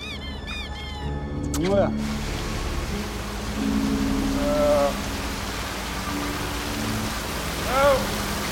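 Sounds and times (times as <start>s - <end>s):
speech: 1.0s - 2.3s
heavy rain pouring: 1.7s - 8.5s.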